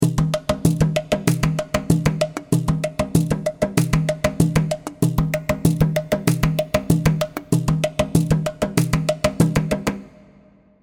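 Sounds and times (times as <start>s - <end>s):
tiki percussion kit: 0.0s - 10.4s.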